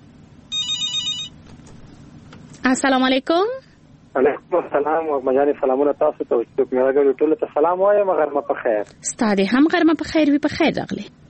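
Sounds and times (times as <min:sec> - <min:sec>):
high trilling electronic telephone ring from an incoming call: 0:00.5 - 0:01.4
speech: 0:02.6 - 0:03.6, 0:04.2 - 0:11.2.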